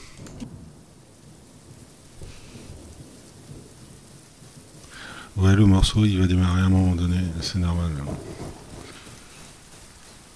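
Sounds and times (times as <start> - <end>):
steady rain: 0.0 - 10.3
speech: 5.4 - 8.6.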